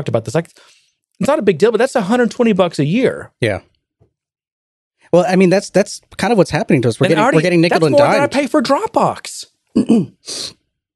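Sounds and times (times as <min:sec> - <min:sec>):
speech: 0:00.0 - 0:03.7, 0:05.1 - 0:10.6
short throaty grunt: 0:09.8 - 0:10.2
person sniffling: 0:09.8 - 0:10.7.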